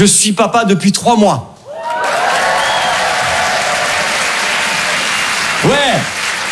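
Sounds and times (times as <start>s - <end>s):
speech: 0.0s - 2.2s
audience applauding: 1.7s - 6.5s.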